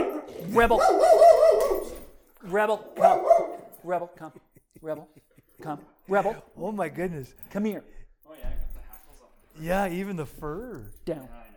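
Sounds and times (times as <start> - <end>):
dog barking at a person: 0.0 - 2.0, 3.0 - 3.7
speech: 0.5 - 1.4, 2.4 - 8.6, 9.6 - 11.4.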